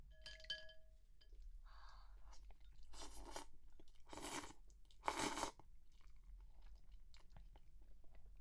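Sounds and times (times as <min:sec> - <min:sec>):
somen noodles being slurped and chewed: 0:02.3 - 0:07.7.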